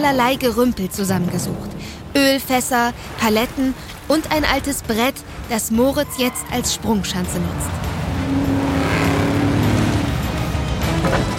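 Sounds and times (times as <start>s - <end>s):
speech: 0.0s - 7.9s
jeep engine roaring at speed in a chase: 5.2s - 11.3s.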